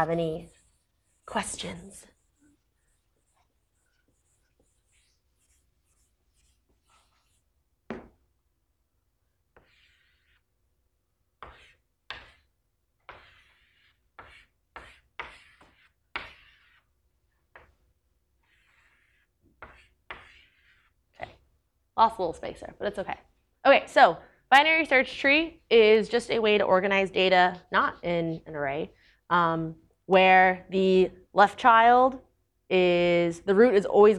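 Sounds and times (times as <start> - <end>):
speech: 0.0 - 0.6, 1.3 - 2.1, 22.0 - 34.1
eraser rubbing across a board during a lecture: 0.0 - 8.1, 9.5 - 10.8, 11.4 - 21.5.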